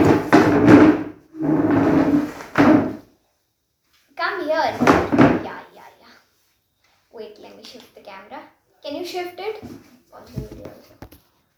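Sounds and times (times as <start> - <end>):
chair dragged across a hard floor: 0.0 - 3.1, 4.7 - 5.4
speech: 7.6 - 11.0.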